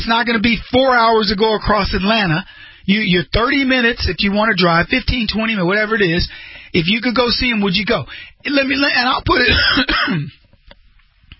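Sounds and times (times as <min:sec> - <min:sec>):
speech: 0:00.0 - 0:10.4
person coughing: 0:09.4 - 0:10.4
throat clearing: 0:09.4 - 0:10.4.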